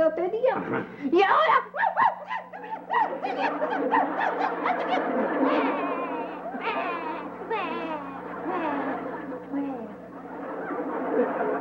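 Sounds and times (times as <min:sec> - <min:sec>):
laughter: 0:00.4 - 0:11.5
speech: 0:00.6 - 0:01.7
boy crying in wails and sobs over an unsold lottery ticket: 0:01.6 - 0:10.0.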